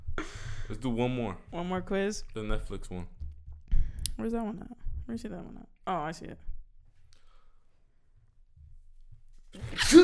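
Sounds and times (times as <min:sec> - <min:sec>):
faint low rumbling: 0:00.0 - 0:06.9
speech: 0:00.7 - 0:03.2, 0:04.2 - 0:06.5, 0:09.5 - 0:10.0
sneeze: 0:09.6 - 0:10.0.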